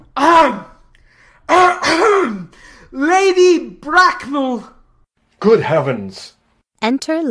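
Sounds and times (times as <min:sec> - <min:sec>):
speech: 0:00.2 - 0:00.7, 0:01.5 - 0:04.8, 0:05.4 - 0:07.2
loud deliberate throat-clearing cough: 0:01.5 - 0:02.5.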